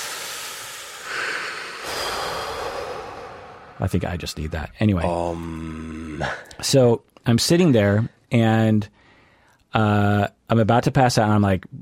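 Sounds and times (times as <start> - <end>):
deep breath taken in and out: 0.0 - 4.0, 8.9 - 9.6
speech: 3.8 - 9.0, 9.7 - 11.8.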